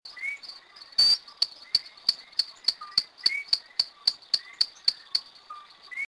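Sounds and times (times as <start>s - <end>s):
Eleutherodactylus locustus whistle and ticks in El Yunque National Forest Puerto Rico: 0.2s - 5.3s.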